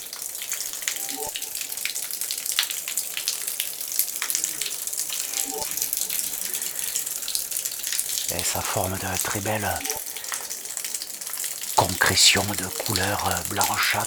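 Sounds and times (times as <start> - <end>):
splashy drips: 0.0 - 14.0
water flowing: 0.0 - 14.0
speech: 8.4 - 10.0, 11.8 - 14.0.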